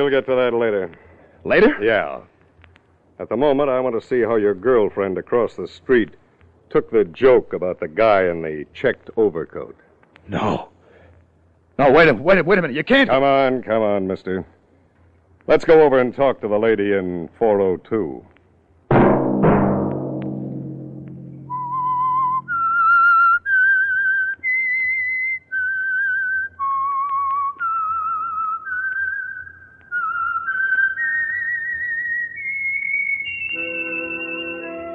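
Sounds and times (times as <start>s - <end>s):
speech: 0.0s - 2.3s, 3.2s - 10.7s, 11.8s - 14.5s, 15.5s - 18.3s
sharp loud struck notes: 18.9s - 23.1s
faint accompaniment: 18.9s - 23.5s, 33.3s - 34.9s
lone whistler whistling a slow eerie tune: 21.5s - 34.9s.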